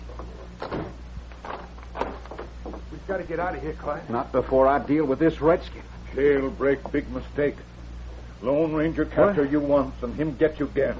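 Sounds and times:
low hum: 0.0s - 10.9s
door swinging shut with a soft thud: 0.2s - 3.0s
speech: 3.1s - 7.8s, 8.4s - 10.9s.

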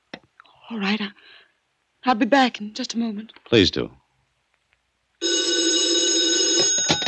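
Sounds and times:
speech: 0.7s - 4.0s
telephone bell ringing: 5.2s - 7.0s.

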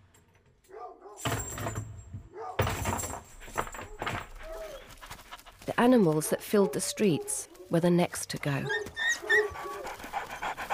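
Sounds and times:
dog panting: 3.4s - 7.5s, 8.5s - 10.7s
speech: 5.8s - 8.9s.

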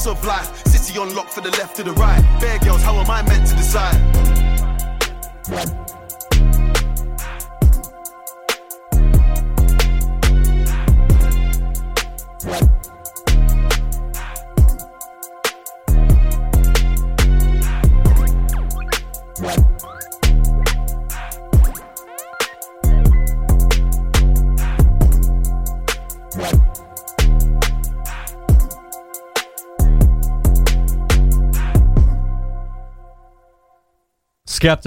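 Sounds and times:
heavy booming bass line: 0.0s - 0.8s, 2.0s - 7.8s, 9.0s - 14.8s, 15.9s - 21.8s, 22.8s - 28.6s, 29.8s - 32.6s
speech: 0.0s - 4.5s, 5.4s - 6.0s, 12.4s - 12.7s, 34.6s - 34.8s
grime music track playing: 0.0s - 33.6s.

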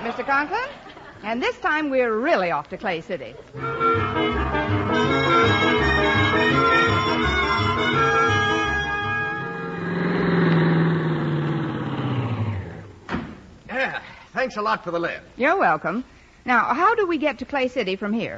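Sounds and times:
speech: 0.2s - 8.2s, 13.8s - 18.3s
car engine starting and running: 3.6s - 13.1s.

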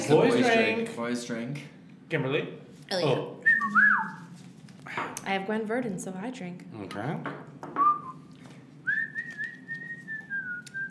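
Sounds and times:
low hum: 0.0s - 10.9s
speech: 0.1s - 4.3s, 4.9s - 7.5s
person whistling a show tune: 3.4s - 4.2s, 7.8s - 8.2s, 8.8s - 10.9s.

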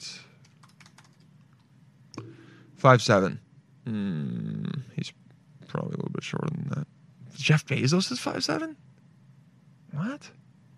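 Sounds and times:
computer keyboard typing: 0.4s - 1.7s
low hum: 1.6s - 10.0s
speech: 2.8s - 4.4s, 5.8s - 6.8s, 7.5s - 8.8s.

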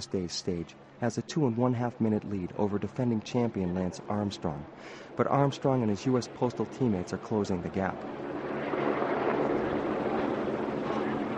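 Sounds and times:
speech: 0.0s - 8.3s
helicopters roaring overhead over a valley: 0.0s - 11.3s.

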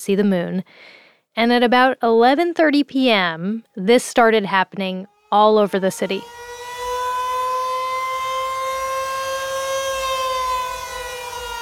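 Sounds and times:
speech: 0.0s - 6.4s
city tornado warning sirens wailing: 5.1s - 11.6s.

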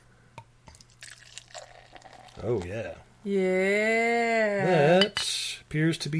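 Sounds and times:
medium brown lager pouring into a glass: 0.7s - 3.0s
speech: 2.4s - 6.1s.

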